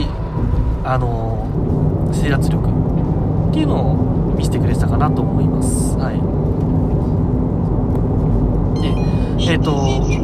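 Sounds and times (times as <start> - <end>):
loud road rumble from inside a car driving through a highway ETC toll lane: 0.0 - 10.2
speech: 0.9 - 2.9, 3.5 - 6.8, 9.4 - 10.2
electronic beeping tone: 8.8 - 9.5.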